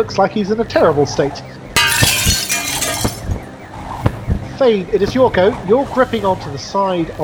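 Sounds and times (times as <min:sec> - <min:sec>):
speech: 0:00.0 - 0:01.6, 0:04.6 - 0:07.2
glass shards falling and clinking: 0:01.8 - 0:03.3
window glass smashing: 0:01.8 - 0:03.3.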